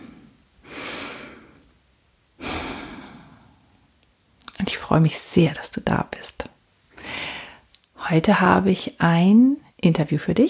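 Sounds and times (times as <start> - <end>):
slow deep breath: 0.0 - 1.7, 2.4 - 3.8, 6.9 - 7.7
speech: 4.9 - 6.5, 8.1 - 10.4.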